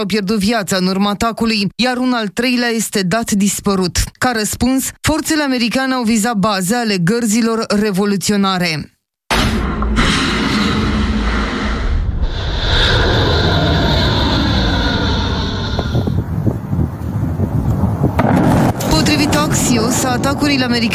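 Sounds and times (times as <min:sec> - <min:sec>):
speech: 0:00.0 - 0:08.9, 0:19.8 - 0:20.9
jet airplanes roaring at Ben Gurion Airport in Israel: 0:10.0 - 0:20.9.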